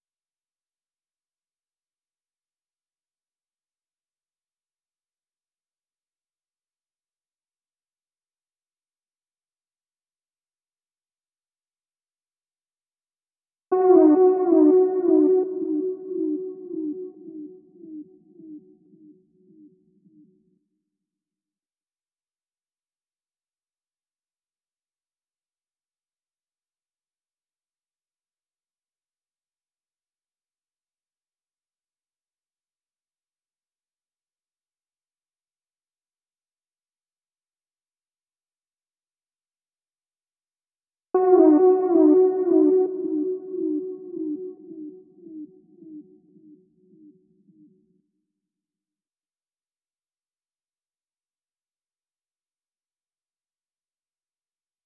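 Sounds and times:
70 BPM melody loop in B minor: 13.7 - 19.1, 41.2 - 46.6.

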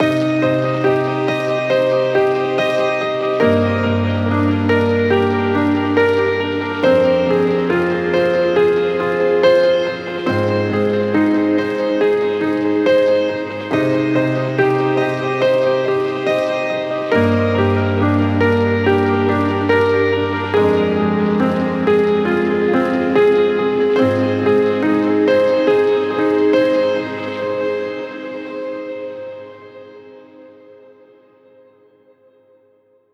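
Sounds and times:
piano: 0.0 - 33.1.

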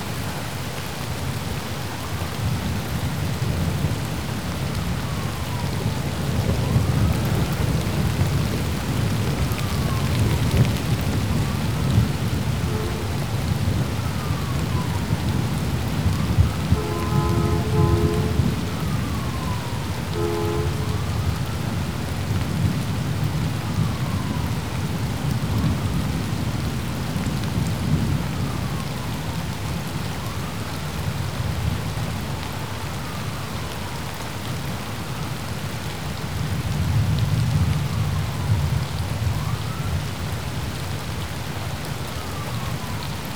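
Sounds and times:
rain: 0.0 - 43.3
sirens: 1.1 - 43.3.

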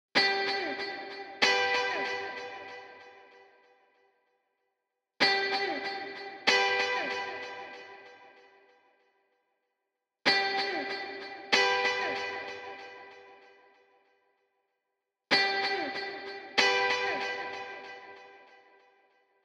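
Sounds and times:
high guitar loop in G major: 0.2 - 3.2, 5.2 - 8.3, 10.3 - 13.4, 15.3 - 18.6.

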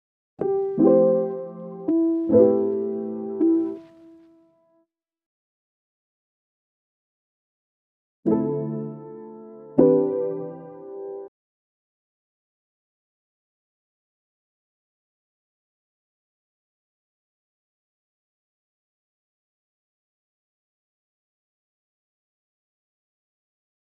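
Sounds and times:
piano loop in C major: 0.4 - 4.2, 8.4 - 11.3.

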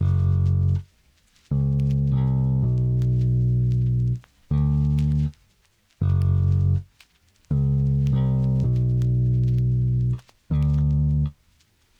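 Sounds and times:
classic bass melody loop in A major: 0.0 - 0.9, 1.5 - 5.4, 6.0 - 6.9, 7.5 - 11.4.

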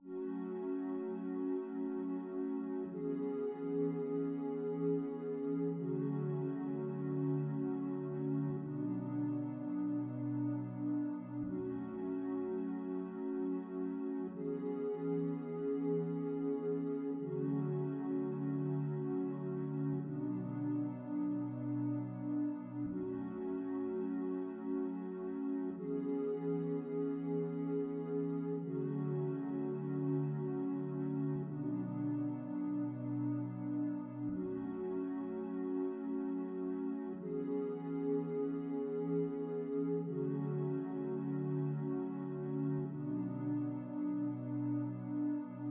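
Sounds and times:
synth pad loop in F sharp minor: 0.0 - 45.6.

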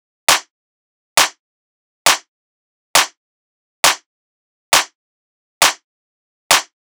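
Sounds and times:
techno clap drum loop at 135: 0.3 - 0.5, 1.2 - 1.4, 2.1 - 2.3, 3.0 - 3.2, 3.8 - 4.1, 4.8 - 5.0, 5.6 - 5.8, 6.5 - 6.8.

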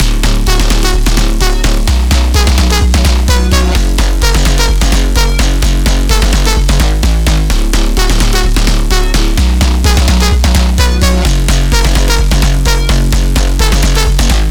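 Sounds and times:
house music drop loop in F sharp minor: 0.0 - 14.5.

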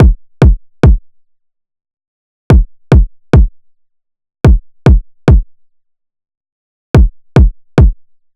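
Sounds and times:
experimental 108 BPM drum loop with kick: 0.0 - 1.0, 2.5 - 3.5, 4.4 - 5.5, 7.0 - 8.0.

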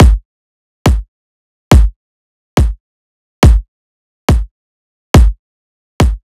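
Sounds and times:
riddim kick drum loop: 0.0 - 0.2, 0.9 - 1.1, 1.7 - 2.0, 2.6 - 2.8, 3.4 - 3.7, 4.3 - 4.5, 5.2 - 5.4, 6.0 - 6.2.

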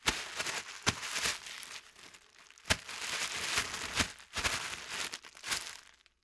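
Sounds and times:
plastic ruffling: 0.0 - 6.0.

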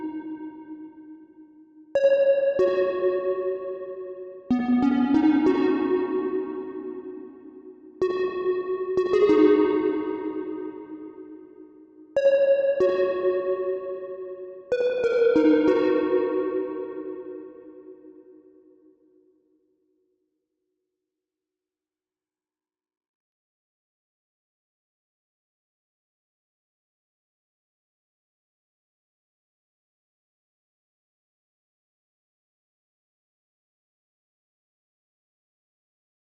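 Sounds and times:
G# minor pluck melody: 2.0 - 18.4.

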